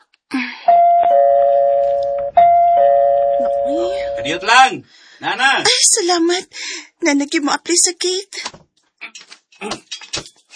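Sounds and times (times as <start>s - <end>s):
two-tone doorbell chiming ding-dong: 0.7s - 4.3s
speech: 4.2s - 8.6s.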